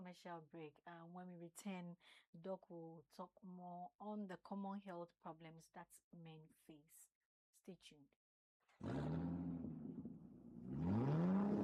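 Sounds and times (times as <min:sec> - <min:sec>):
speech: 0:00.0 - 0:08.2
car engine revving: 0:08.8 - 0:11.6.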